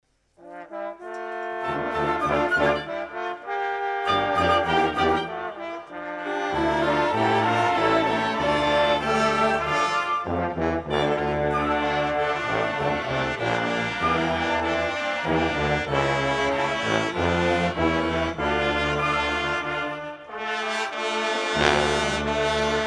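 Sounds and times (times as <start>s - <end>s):
brass band playing in Apsheronsk: 0.4s - 22.8s.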